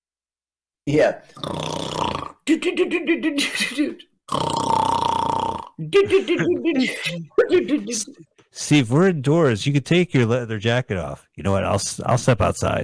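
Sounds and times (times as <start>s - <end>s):
speech: 0.8s - 1.7s, 2.5s - 5.0s, 5.8s - 12.8s
person imitating loud snoring with their voice: 1.4s - 2.5s, 4.3s - 5.9s
laughter: 5.9s - 8.1s.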